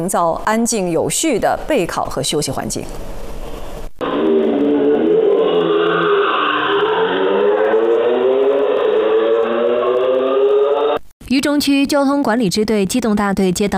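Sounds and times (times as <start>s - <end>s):
speech: 0.0s - 3.2s, 11.3s - 13.7s
motorcycle engine revving: 4.0s - 11.0s.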